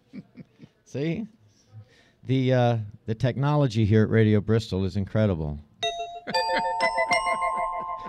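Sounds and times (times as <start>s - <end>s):
speech: 0.9s - 1.4s, 2.2s - 5.7s
doorbell chime in a radio studio: 5.8s - 8.0s.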